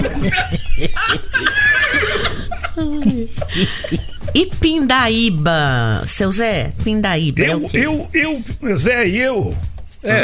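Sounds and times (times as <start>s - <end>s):
laughter: 0.0s - 4.6s
horse whinnying: 1.4s - 2.5s
speech: 3.6s - 10.2s.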